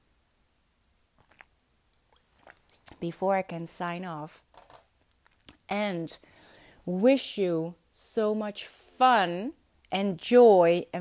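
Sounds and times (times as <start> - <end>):
wet mouth clicks: 1.2 - 3.0
sipping water: 1.2 - 3.1
speech: 3.0 - 4.5, 5.7 - 10.9.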